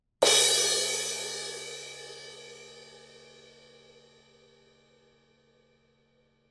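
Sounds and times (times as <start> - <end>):
Zildjian 19 Project 391 crash cymbal: 0.2 - 5.3.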